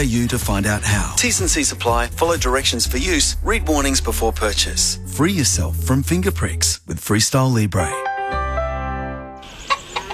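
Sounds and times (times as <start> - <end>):
speech: 0.0 - 8.1
free-range chickens clucking: 9.4 - 10.1.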